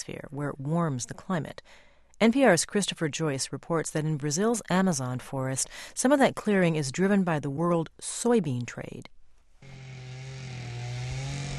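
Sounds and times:
speech: 0.0 - 9.2
chainsaw engine droning in forest: 9.6 - 11.5.

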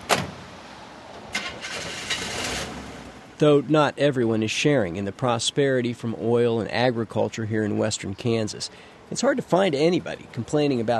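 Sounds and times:
1981 Chevy pickup truck engine starting in western Kansas: 1.3 - 3.2
speech: 3.4 - 10.9.

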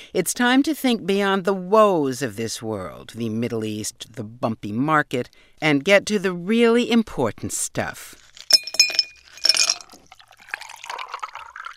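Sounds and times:
speech: 0.1 - 8.2
iced tea pouring and trickling: 8.2 - 11.7
ice cubes clinking against a glass of iced tea: 8.4 - 11.7.

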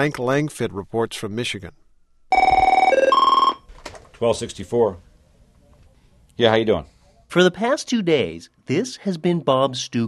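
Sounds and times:
speech: 0.0 - 2.5, 4.2 - 5.1, 6.4 - 10.0
telephone ringing at a union local office: 2.3 - 3.7.

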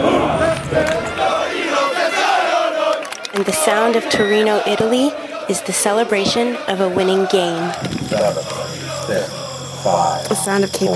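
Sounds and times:
soldiers shouting together during morning training at Fort Hood, Texas: 0.0 - 9.8
speech: 3.4 - 10.9.

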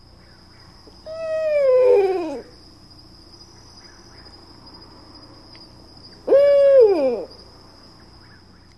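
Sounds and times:
high insect trill: 0.0 - 8.7
female and male owl hoots: 1.0 - 2.6, 6.2 - 7.4.

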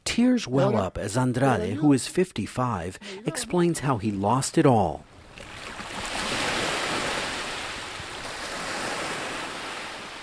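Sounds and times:
speech: 0.2 - 5.1
light breeze: 0.6 - 10.2
gentle waves washing onto a beach: 5.0 - 10.2.

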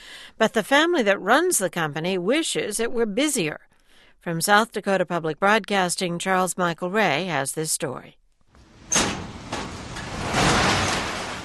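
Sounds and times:
speech: 0.4 - 8.2
storage room garage door being cranked open at a package delivery service in South Dakota: 8.6 - 11.4.

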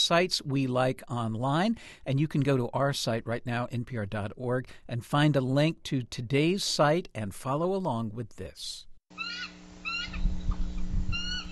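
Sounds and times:
speech: 0.0 - 10.3
bald eagles calling at their nest in British Columbia: 9.1 - 11.4.

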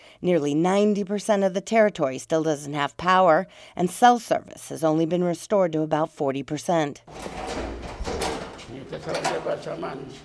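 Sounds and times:
speech: 0.2 - 7.6, 9.0 - 10.2
door pulled open with rattling scraping slide: 7.1 - 9.7.

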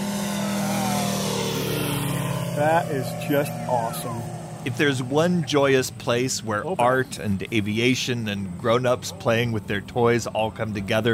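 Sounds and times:
model airplane engine racing past a crowd at a grass-runway flying event: 0.0 - 11.1
speech: 2.6 - 11.1.

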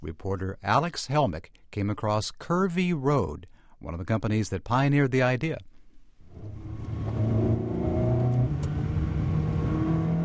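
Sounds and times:
speech: 0.0 - 5.7
Ferrari sports car engine revving: 6.3 - 10.2.

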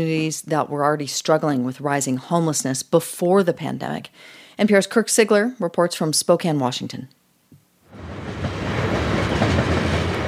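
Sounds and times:
speech: 0.0 - 7.2
train passing over a railroad overpass in Spokane Washington: 7.9 - 10.2.

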